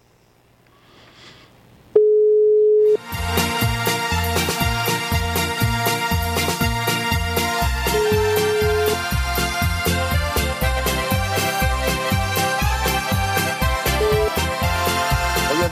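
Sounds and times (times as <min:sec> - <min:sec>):
ringing tone of a call placed from a slider mobile phone: 0:02.0 - 0:03.0, 0:07.9 - 0:09.0
loud rhythmic music with a steady beat: 0:03.0 - 0:15.7.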